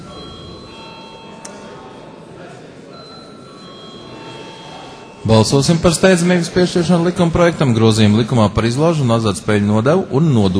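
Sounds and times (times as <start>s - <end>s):
continuous electric parliamentary voting bell ringing in a parliament: 0.0s - 6.9s
faint murmur of voices: 0.0s - 10.5s
speech: 5.2s - 10.5s.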